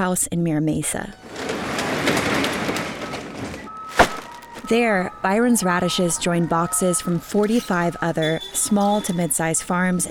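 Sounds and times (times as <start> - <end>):
speech: 0.0 - 1.4, 2.0 - 2.4, 4.7 - 10.0
delivery truck engine rumbling as it pulls up at a farm: 1.1 - 5.2
sharp clunk: 2.5 - 4.7.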